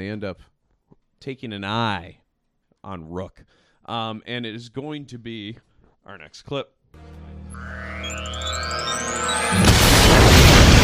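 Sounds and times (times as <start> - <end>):
speech: 0.0 - 0.6, 1.2 - 2.2, 2.8 - 7.8
rising whistling tone: 7.5 - 10.4
bombs planted on speeder bikes exploding: 9.5 - 10.8.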